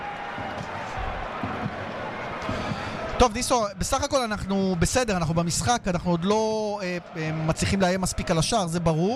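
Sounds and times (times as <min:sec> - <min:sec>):
girls with Israeli flags cheering for the Israel national team: 0:00.0 - 0:03.2
crowd noise from the stands: 0:00.0 - 0:09.1
speech: 0:03.2 - 0:09.1.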